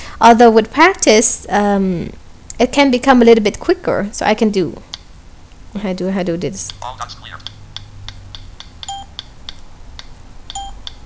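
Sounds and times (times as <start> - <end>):
low hum: 0.0 - 11.0
speech: 0.2 - 4.9, 5.8 - 7.4
keypad beeps when pressing the validate key: 8.8 - 9.3, 10.5 - 11.0.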